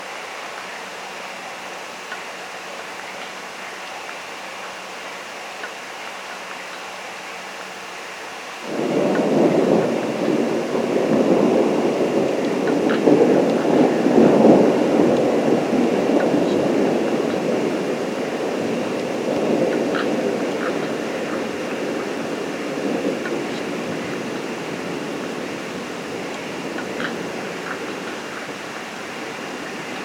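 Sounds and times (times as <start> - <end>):
thunder: 8.6 - 30.0.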